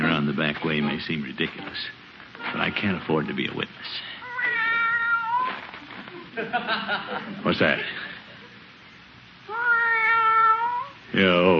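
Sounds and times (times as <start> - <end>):
speech: 0.6 - 4.2, 6.4 - 8.1, 11.1 - 11.5
cat meowing: 2.4 - 3.5, 4.2 - 5.6, 9.5 - 11.0
laughter: 6.0 - 8.6.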